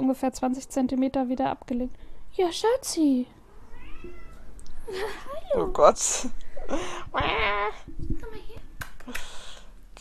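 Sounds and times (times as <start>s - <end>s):
speech: 0.1s - 3.4s, 4.9s - 8.4s
cat meowing: 3.5s - 4.5s.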